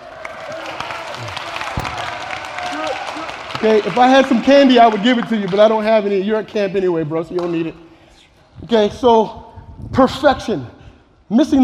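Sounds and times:
audience at a camp applauding: 0.0s - 5.6s
speech: 3.6s - 7.8s, 8.6s - 11.6s.

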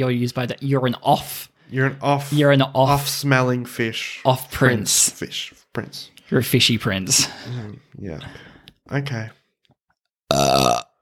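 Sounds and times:
speech: 0.0s - 9.4s
burp: 10.3s - 11.0s.

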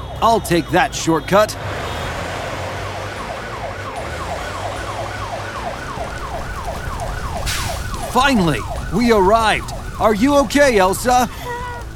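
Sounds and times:
emergency vehicle siren wailing: 0.0s - 11.9s
speech: 0.2s - 1.7s, 8.2s - 11.4s
low engine rumble: 3.8s - 11.9s.

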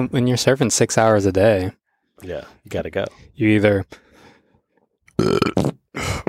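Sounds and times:
speech: 0.0s - 4.0s, 5.2s - 6.2s
loud burp: 5.1s - 6.2s.

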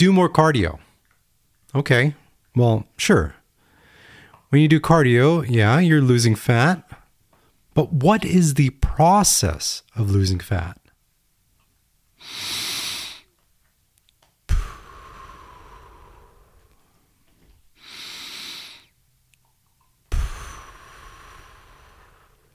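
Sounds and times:
speech: 0.0s - 0.8s, 1.7s - 3.4s, 4.5s - 6.9s, 7.8s - 10.8s
breathing in and out: 3.6s - 4.5s, 6.9s - 7.7s, 12.2s - 13.4s, 14.5s - 19.0s, 20.1s - 22.5s.

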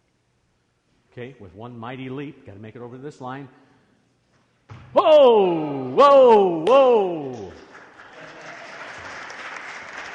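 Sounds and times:
speech: 1.2s - 3.6s, 5.0s - 7.6s
audience clapping: 6.0s - 10.1s.

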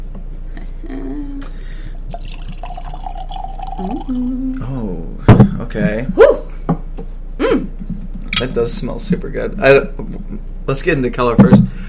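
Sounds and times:
bourbon pouring into a glass: 2.0s - 4.6s
glass clinking: 2.1s - 4.1s
speech: 3.8s - 6.4s, 8.4s - 11.8s.

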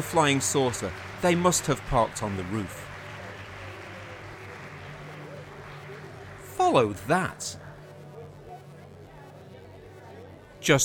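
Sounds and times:
speech: 0.0s - 2.9s, 6.7s - 7.6s, 10.6s - 10.8s
studio audience applauding to welcome a band: 0.0s - 9.4s
studio audience cheering: 0.0s - 9.5s.

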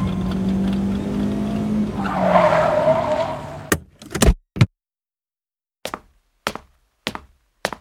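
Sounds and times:
car engine rumbling: 0.0s - 4.0s
tire squeal as car pulls up: 1.7s - 3.7s.

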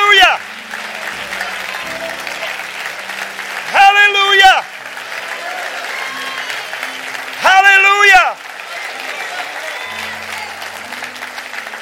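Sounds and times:
congregation clapping hands: 0.0s - 11.8s.

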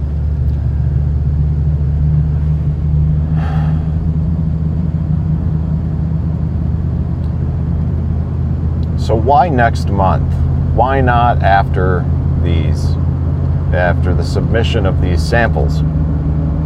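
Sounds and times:
morning road traffic rumble: 0.0s - 16.6s
vehicle passing: 1.8s - 4.7s
speech: 9.3s - 13.0s, 13.7s - 16.0s.

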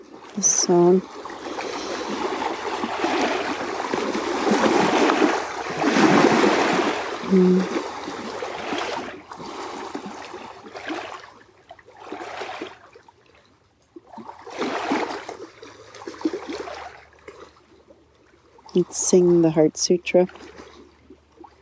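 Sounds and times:
lake water lapping: 0.0s - 21.5s
speech: 0.4s - 1.2s, 7.3s - 7.8s, 18.8s - 20.6s.

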